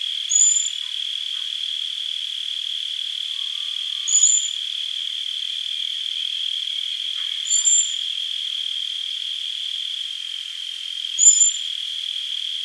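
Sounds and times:
buzzing insect chorus: 0:00.0 - 0:12.6
Turdus merula common blackbird thin whistled calls: 0:00.3 - 0:00.8, 0:04.0 - 0:04.6, 0:07.5 - 0:08.0, 0:11.2 - 0:11.6.

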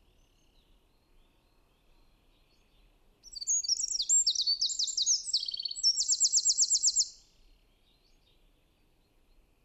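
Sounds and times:
Eurasian wren Troglodytes troglodytes singing: 0:03.2 - 0:07.2.

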